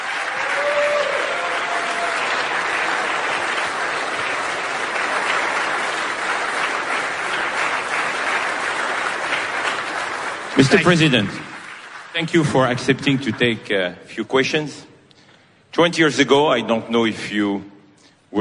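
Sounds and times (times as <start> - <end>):
sustained applause from a large audience: 0.0 - 13.7
speech: 10.6 - 11.5, 12.2 - 14.9, 15.7 - 17.7.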